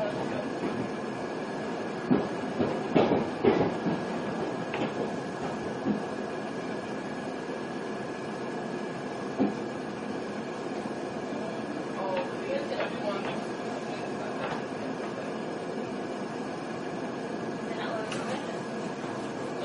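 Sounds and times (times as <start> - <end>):
train rolling along the rails heard from inside the carriage: 0.0 - 19.6
train wheels clacking over track joints: 2.0 - 6.1.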